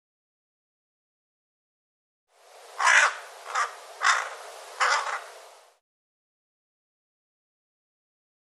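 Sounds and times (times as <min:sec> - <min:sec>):
bird cawing hoarsely: 0:02.6 - 0:05.8.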